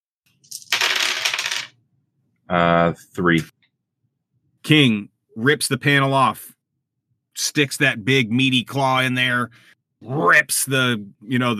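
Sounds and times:
dice tumbling across a hard table: 0:00.4 - 0:01.8
speech: 0:02.5 - 0:03.6, 0:04.6 - 0:06.6, 0:07.4 - 0:11.5.

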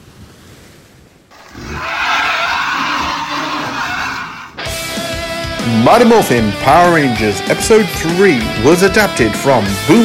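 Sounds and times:
sea wind: 0:00.0 - 0:04.9
speech: 0:05.7 - 0:10.0.

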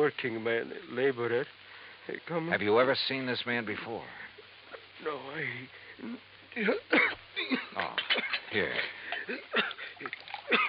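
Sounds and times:
speech: 0:00.0 - 0:04.3, 0:05.0 - 0:10.6
water poured into a glass: 0:10.0 - 0:10.5.

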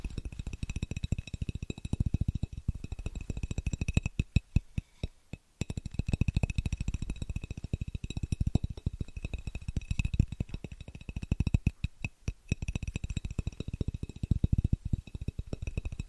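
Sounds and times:
fast rhythmic tapping: 0:00.0 - 0:16.0.

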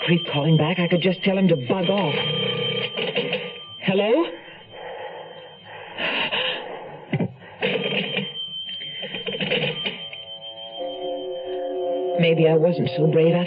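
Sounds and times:
telephone bell ringing: 0:00.0 - 0:04.6, 0:07.6 - 0:13.4
speech: 0:00.1 - 0:03.3, 0:03.9 - 0:04.4, 0:12.2 - 0:13.4.

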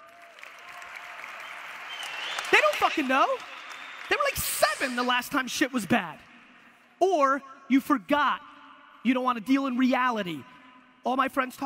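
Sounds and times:
crowd of many hands clapping: 0:00.0 - 0:05.1
speech: 0:02.5 - 0:03.5, 0:04.1 - 0:06.3, 0:07.0 - 0:11.6.

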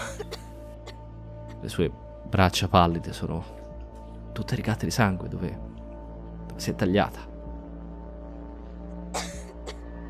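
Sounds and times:
person coughing harshly: 0:00.0 - 0:01.0, 0:09.2 - 0:10.0
speech: 0:01.6 - 0:03.6, 0:04.4 - 0:05.7, 0:06.6 - 0:07.3.

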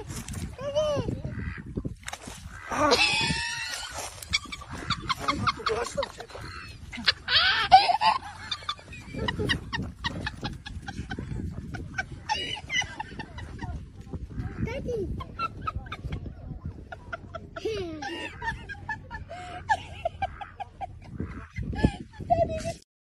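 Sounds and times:
Cayuga duck quacking: 0:01.2 - 0:01.7, 0:04.4 - 0:07.6, 0:14.3 - 0:14.9, 0:20.1 - 0:21.7
laughter: 0:02.7 - 0:22.8.

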